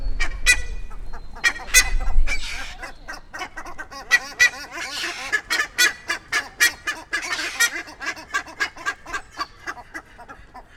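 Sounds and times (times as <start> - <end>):
Theristicus melanopus duet: 0.0 - 10.7.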